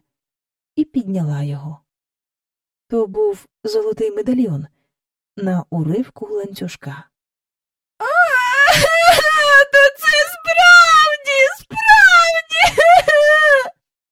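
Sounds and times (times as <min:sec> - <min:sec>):
speech: 0:00.8 - 0:01.8, 0:02.9 - 0:04.8, 0:05.4 - 0:07.1
child crying and wailing: 0:08.0 - 0:13.8.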